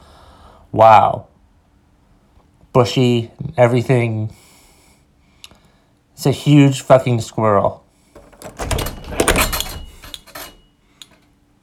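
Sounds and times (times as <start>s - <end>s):
speech: 0.7s - 1.3s, 2.8s - 4.4s, 6.2s - 7.8s
door opening with metallic and wooden knocks: 8.2s - 10.7s.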